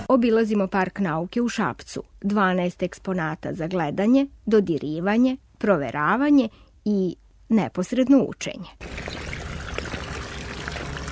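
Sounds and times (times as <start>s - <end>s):
speech: 0.1s - 9.2s
water splashing in an outdoor educational fountain at a science park in Šabac Serbia: 8.8s - 11.0s.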